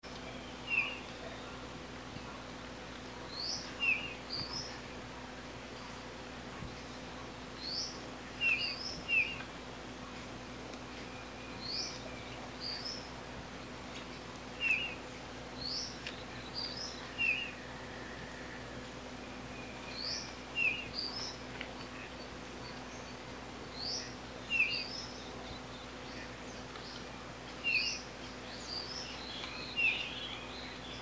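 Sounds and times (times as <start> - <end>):
gaturamo rei singing: 0.0 - 2.4, 3.2 - 5.9, 6.8 - 9.5, 10.8 - 31.0.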